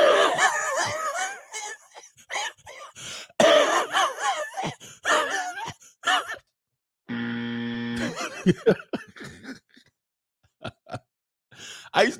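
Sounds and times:
laughter: 0:00.0 - 0:02.9, 0:08.0 - 0:09.8, 0:10.6 - 0:11.1
voice imitating an old smoker's hacking cigarette cough: 0:03.4 - 0:06.4
speech: 0:08.5 - 0:09.0, 0:12.0 - 0:12.1.

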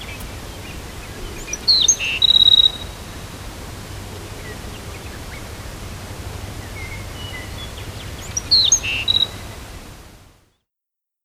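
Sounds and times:
background hiss: 0:00.0 - 0:10.6
black-throated sparrow singing: 0:00.1 - 0:02.9, 0:06.8 - 0:09.4.

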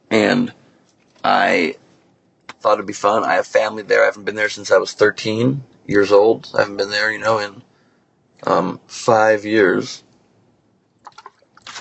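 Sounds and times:
speech: 0:00.4 - 0:00.6, 0:01.3 - 0:01.8, 0:02.6 - 0:07.7, 0:08.4 - 0:10.0
breathy exhale: 0:07.7 - 0:08.2
person gulping water: 0:11.0 - 0:11.8.

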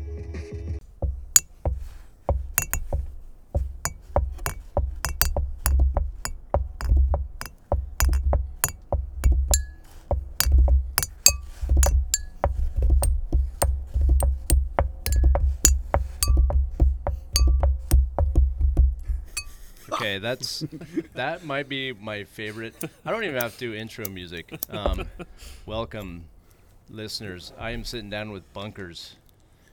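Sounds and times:
glasses clinking in a toast: 0:00.8 - 0:18.1, 0:19.3 - 0:19.9
speech: 0:20.1 - 0:26.3, 0:26.9 - 0:29.2.

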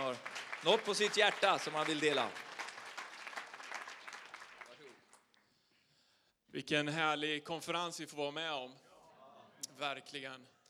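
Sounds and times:
audience applause: 0:00.0 - 0:05.1
speech: 0:00.2 - 0:02.5, 0:06.6 - 0:08.8, 0:09.8 - 0:10.6.

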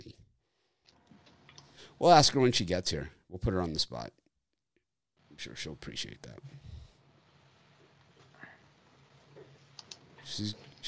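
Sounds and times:
speech: 0:02.0 - 0:04.2, 0:05.4 - 0:06.7, 0:10.3 - 0:10.8
woman typing on a computer keyboard into Skype: 0:09.8 - 0:10.0.

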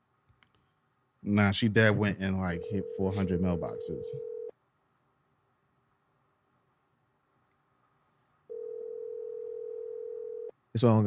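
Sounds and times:
faint hum: 0:00.0 - 0:11.0
speech: 0:01.3 - 0:04.3, 0:10.8 - 0:11.0
phone line ringing tone: 0:02.5 - 0:04.5, 0:08.5 - 0:10.5.

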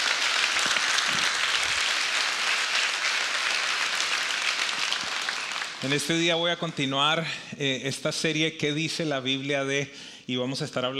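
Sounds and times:
congregation applauding: 0:00.0 - 0:06.6
speech: 0:05.8 - 0:10.9.

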